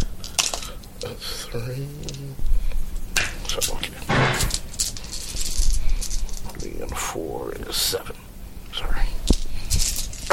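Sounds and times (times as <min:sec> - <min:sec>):
pool of dice rattling as they are rolled in a tabletop role-playing game: 0:00.2 - 0:00.7, 0:03.2 - 0:07.0, 0:09.3 - 0:10.3
speech: 0:01.1 - 0:02.6, 0:03.5 - 0:04.6, 0:06.7 - 0:08.9.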